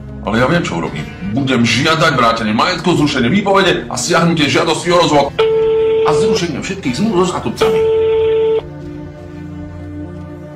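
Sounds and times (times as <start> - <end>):
speech: 0.2 - 5.5, 6.1 - 8.0
loud steady electronic telephone tone: 5.4 - 6.4, 7.6 - 8.7.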